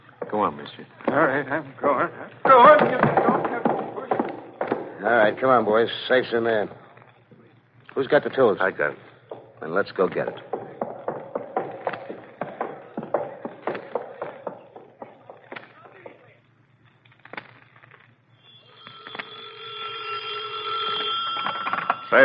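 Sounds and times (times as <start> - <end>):
shuffling footsteps: 0.0 - 7.6, 8.3 - 18.2
speech: 0.4 - 3.7, 5.0 - 6.8, 8.0 - 10.5
telephone ringing with a trilling electronic bell: 18.5 - 22.2.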